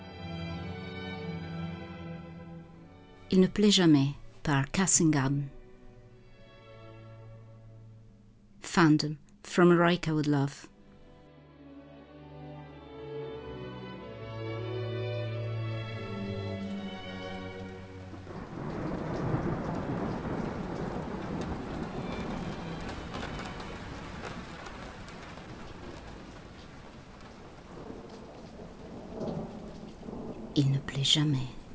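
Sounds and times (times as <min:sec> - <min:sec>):
heavy rain of large drops hitting the ground: 0:00.0 - 0:08.4, 0:13.3 - 0:31.7
speech: 0:03.3 - 0:05.6, 0:08.8 - 0:10.7, 0:31.0 - 0:31.6
rumbling thunder: 0:15.8 - 0:31.7.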